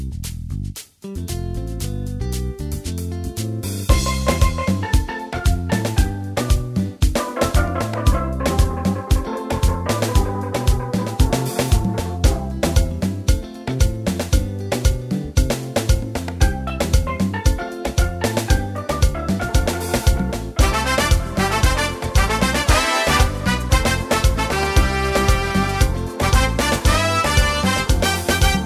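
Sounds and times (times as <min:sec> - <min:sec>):
soca music: 0:00.2 - 0:28.6.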